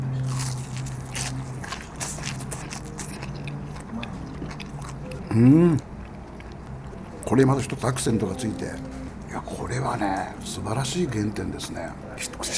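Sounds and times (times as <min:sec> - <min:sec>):
biting and chewing raw green peppercorn flesh: 0:00.0 - 0:05.4
speech: 0:05.4 - 0:05.9, 0:07.3 - 0:12.5.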